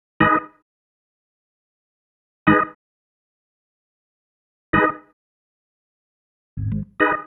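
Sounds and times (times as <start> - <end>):
organ stab: 6.6 - 7.2.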